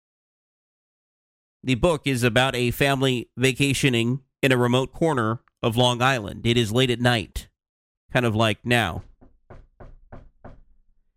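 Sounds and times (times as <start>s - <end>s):
speech: 1.6s - 7.5s, 8.1s - 9.1s
firm knocking on a door: 8.9s - 10.9s.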